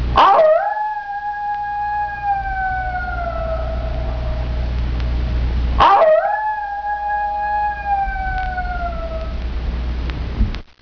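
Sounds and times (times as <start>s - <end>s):
steady low rumble: 0.0s - 10.6s
coyote howling: 0.2s - 4.8s, 5.8s - 9.6s.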